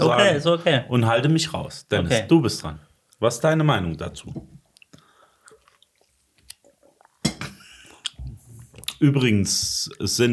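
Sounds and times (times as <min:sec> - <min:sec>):
speech: 0:00.0 - 0:04.6, 0:09.0 - 0:10.3
man chewing with a full mouth: 0:04.7 - 0:09.0.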